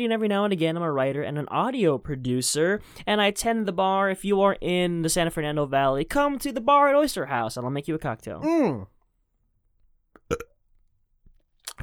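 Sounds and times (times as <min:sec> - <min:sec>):
speech: 0:00.0 - 0:09.0, 0:10.3 - 0:10.5
person burping: 0:08.4 - 0:08.9, 0:10.2 - 0:10.6.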